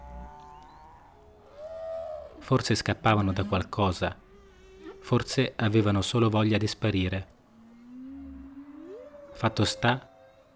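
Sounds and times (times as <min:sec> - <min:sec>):
gray whale tonal moan: 0:00.0 - 0:05.4, 0:07.5 - 0:10.5
speech: 0:02.5 - 0:04.2, 0:05.0 - 0:07.3, 0:09.4 - 0:10.1.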